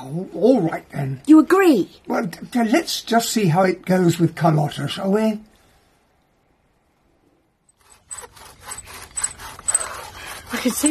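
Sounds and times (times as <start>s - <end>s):
speech: 0.0s - 5.5s, 10.6s - 10.8s
bow drill rasping against wood to get an ember: 7.7s - 10.8s.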